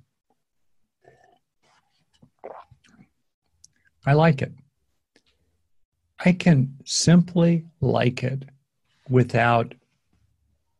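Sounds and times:
person sipping water with kombucha from a glass and swallowing: 0:00.9 - 0:03.9
speech: 0:04.0 - 0:04.6, 0:06.2 - 0:09.8.

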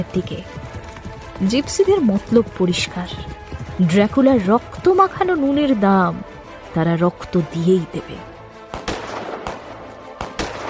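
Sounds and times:
speech: 0:00.0 - 0:00.6, 0:01.4 - 0:08.3
rifle gunshots fired by horsemen: 0:08.7 - 0:10.6.

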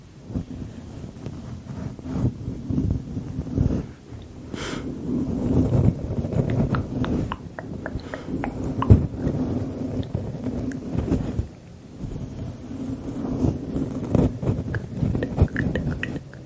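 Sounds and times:
low rumble of breath and handling: 0:00.3 - 0:16.4
close intimate mouth sounds: 0:06.3 - 0:10.8, 0:14.7 - 0:16.4
soft tongue clicks: 0:06.5 - 0:09.0.

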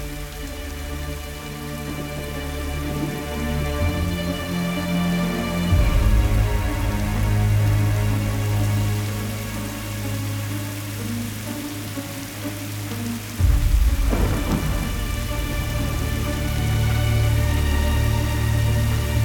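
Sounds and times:
heavy rain falling outdoors: 0:00.0 - 0:19.2.

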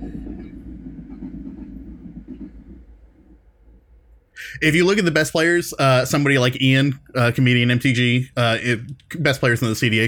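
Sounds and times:
passing train rumbling with rhythmic clatter: 0:00.0 - 0:07.7
speech: 0:04.4 - 0:10.0.

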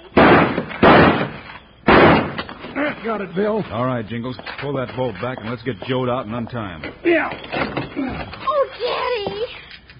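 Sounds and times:
gunshots shooting a door lock off: 0:00.1 - 0:02.6
speech: 0:03.0 - 0:08.9.

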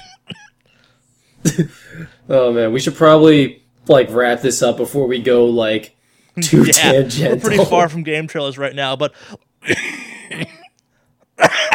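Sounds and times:
person coughing: 0:00.0 - 0:00.6, 0:01.4 - 0:02.2, 0:09.6 - 0:10.8, 0:11.4 - 0:11.7
speech: 0:01.5 - 0:10.6.

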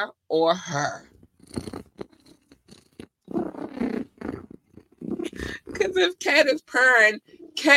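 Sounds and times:
speech: 0:00.0 - 0:01.7, 0:05.3 - 0:07.7
cat purring: 0:01.0 - 0:06.4.

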